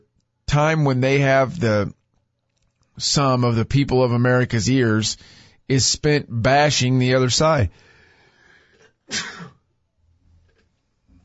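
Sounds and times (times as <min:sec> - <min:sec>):
speech: 0:00.5 - 0:02.0, 0:03.0 - 0:07.9, 0:09.1 - 0:09.6
person sneezing: 0:09.1 - 0:09.6.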